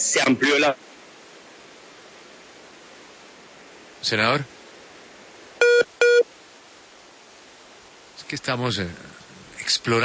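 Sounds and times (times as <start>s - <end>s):
faint phone line hiss: 0.0s - 10.0s
speech: 0.1s - 0.9s, 4.0s - 4.6s, 8.3s - 10.0s
call-waiting electronic beeps: 5.6s - 6.3s.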